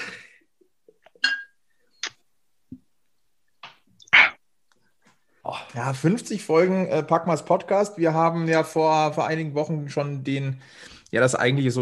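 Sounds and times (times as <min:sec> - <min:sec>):
glasses clinking together in a toast: 0:01.2 - 0:01.6
speech: 0:05.5 - 0:11.8.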